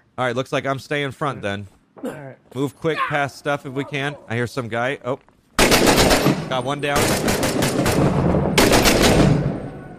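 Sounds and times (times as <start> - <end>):
speech: 0.2 - 8.2
automatic gunfire in a military shooter video game: 5.6 - 9.6.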